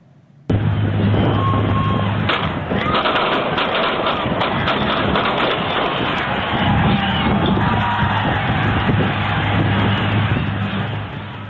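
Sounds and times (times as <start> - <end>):
large crowd panicking, screaming and shouting: 0.5 - 11.4
gunshots: 2.3 - 6.6.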